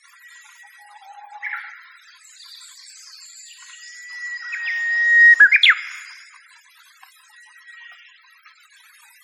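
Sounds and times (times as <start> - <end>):
Japanese bush warbler song: 0.3 - 6.3.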